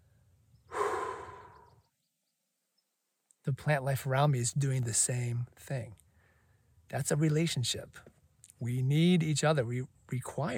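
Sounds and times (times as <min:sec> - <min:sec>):
person breathing out in a soft airy exhale: 0:00.7 - 0:01.8
speech: 0:03.4 - 0:06.0, 0:06.9 - 0:10.5.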